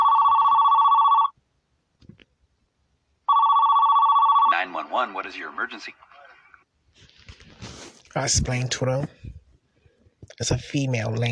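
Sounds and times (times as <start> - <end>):
telephone ringing with electronic tone: 0.0 - 1.4, 3.3 - 5.1
speech: 4.9 - 6.1, 8.2 - 9.2, 10.4 - 11.3.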